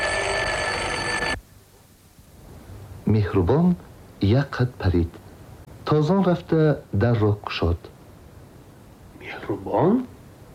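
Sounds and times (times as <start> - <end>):
electric doorbell ringing: 0.0 - 1.4
speech: 3.2 - 5.2, 5.9 - 7.9, 9.3 - 10.1.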